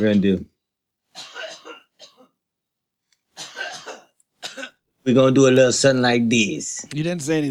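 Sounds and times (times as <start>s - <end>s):
speech: 0.0s - 0.5s, 5.0s - 7.4s
person coughing: 1.2s - 2.4s, 3.4s - 4.8s.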